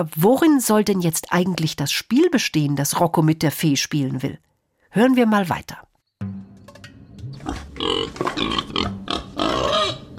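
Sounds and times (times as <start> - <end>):
speech: 0.0 - 5.9, 7.4 - 9.9
wild boar grunting and snorting: 7.4 - 10.1.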